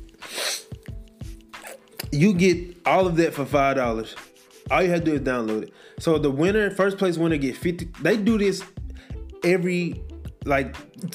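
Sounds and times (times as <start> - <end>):
sneeze: 0.2 - 0.7
speech: 2.1 - 8.8, 9.4 - 11.1.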